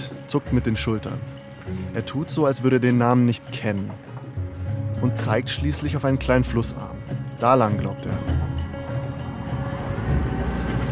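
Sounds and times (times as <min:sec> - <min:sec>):
speech: 0:00.3 - 0:04.1, 0:05.0 - 0:08.4
boat speeding through water toward a river mouth: 0:09.2 - 0:10.9.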